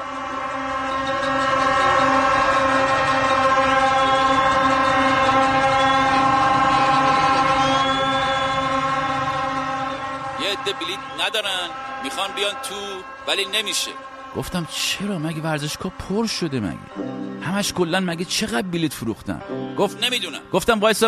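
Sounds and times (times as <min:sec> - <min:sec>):
many horns blown by a waiting crowd: 0:00.0 - 0:21.0
dense murmur of a crowd waiting to board buses: 0:10.4 - 0:14.6
speech: 0:12.4 - 0:21.0.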